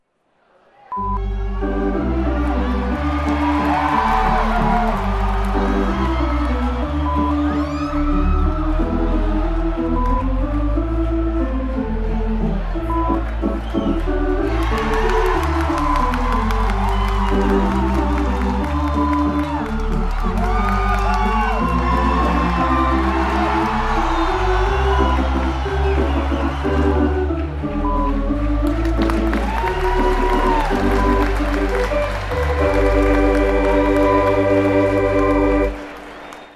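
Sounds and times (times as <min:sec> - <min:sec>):
baseball crowd: 0:00.0 - 0:36.5
baseball music: 0:01.0 - 0:36.5.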